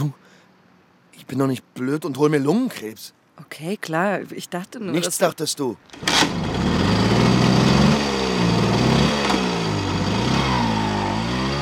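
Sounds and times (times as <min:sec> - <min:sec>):
speech: 0:01.2 - 0:06.8
moped engine revving while riding in circles on a market square: 0:05.9 - 0:11.5.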